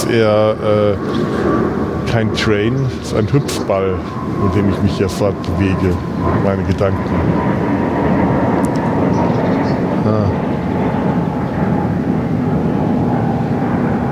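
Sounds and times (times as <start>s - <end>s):
airplane passing overhead: 0.0s - 14.1s
speech: 0.1s - 8.1s.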